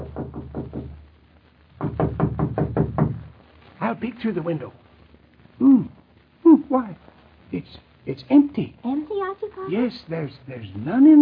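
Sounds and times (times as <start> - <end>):
firm knocking on a door: 0.0 - 1.0, 1.8 - 3.3
speech: 3.9 - 4.8, 6.7 - 11.2.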